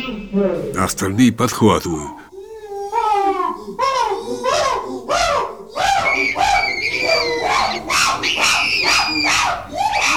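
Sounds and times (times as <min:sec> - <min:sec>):
speech: 0:00.0 - 0:02.2
troop of chimpanzees calling with hoots and shrill screams: 0:02.7 - 0:10.1.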